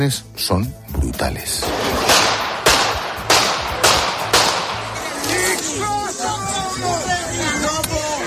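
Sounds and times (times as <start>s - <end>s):
speech: 0.0s - 2.3s
pistol gunshots: 1.6s - 5.4s
crowd shouting in commotion: 3.7s - 8.2s.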